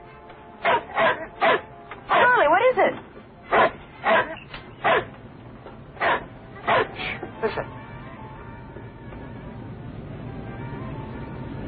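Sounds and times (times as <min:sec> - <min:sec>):
dog barking: 0:00.6 - 0:02.4, 0:03.5 - 0:05.1, 0:06.0 - 0:07.0.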